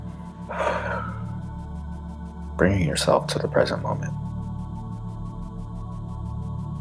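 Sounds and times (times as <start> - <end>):
quiet steady low tone: 0.0 - 6.7
deep inhale and exhale during a guided breathing exercise: 0.3 - 1.4
speech: 2.6 - 4.3.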